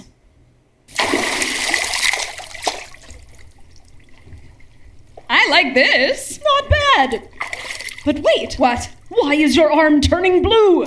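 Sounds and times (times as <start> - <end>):
person plunging into water: 0.9 - 5.2, 7.1 - 8.1
churning water settling into sloshing and dripping: 0.9 - 10.8
speech: 5.5 - 7.3, 8.0 - 10.8.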